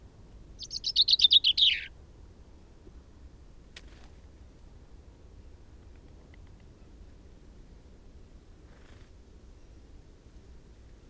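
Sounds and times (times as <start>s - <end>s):
common chaffinch Fringilla coelebs singing: 0.6s - 1.9s.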